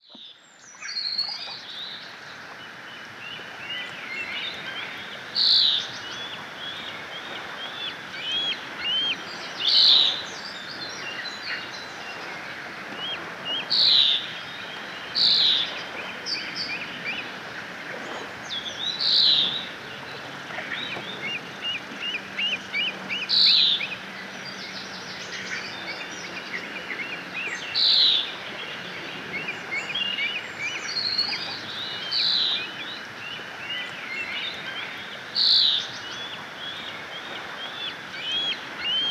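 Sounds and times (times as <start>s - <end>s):
birdsong: 0.0s - 39.0s.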